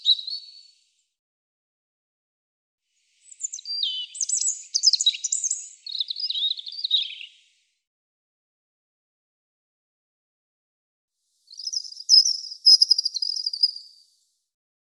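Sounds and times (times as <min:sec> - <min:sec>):
European robin song: 0:00.0 - 0:00.9, 0:03.0 - 0:07.6, 0:11.4 - 0:14.2.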